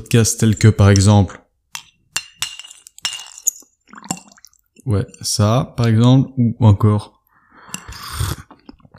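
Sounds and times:
speech: 0.0s - 1.4s, 4.9s - 7.2s
ceramic teacup clinking against a saucer or spoon while drinking tea: 1.8s - 5.2s.

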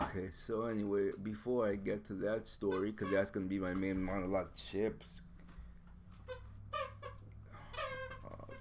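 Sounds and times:
low steady hum: 0.0s - 8.5s
speech: 0.1s - 5.2s
puppy chewing a squeaky dog toy: 2.7s - 3.8s, 6.2s - 8.5s.

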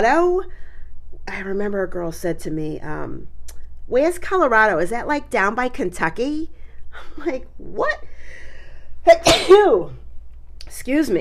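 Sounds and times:
speech: 0.0s - 0.6s, 1.3s - 8.4s, 9.0s - 10.0s, 10.7s - 11.1s
person sneezing during allergy season: 9.2s - 9.7s.

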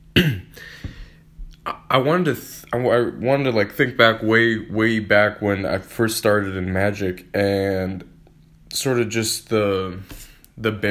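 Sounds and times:
person losing their voice clearing throat: 0.1s - 0.6s
speech: 0.2s - 0.8s, 1.6s - 8.1s, 8.7s - 10.8s.

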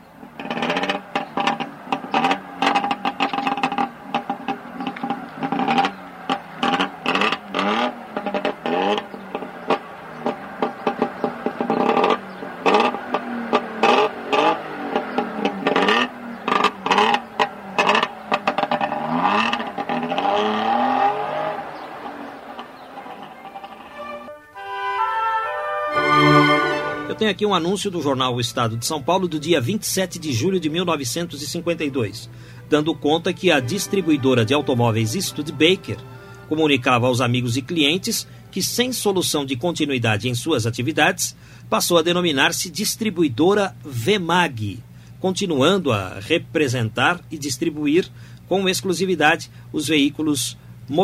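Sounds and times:
small DKV car engine revving: 0.0s - 27.8s, 28.5s - 39.4s
speech: 27.2s - 51.0s.

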